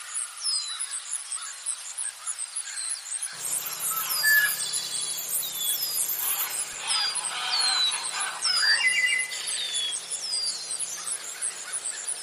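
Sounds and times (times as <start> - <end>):
swamp sounds: 3.3 - 12.2.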